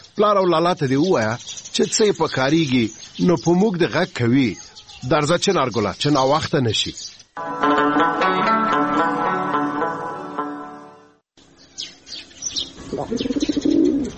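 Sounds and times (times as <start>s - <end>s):
bird chirps: 0.0s - 7.4s, 11.4s - 14.1s
speech: 0.2s - 8.0s, 13.0s - 13.4s
sustained tonal music: 7.4s - 12.9s
pigeon perched on a wall cooing: 12.8s - 14.1s.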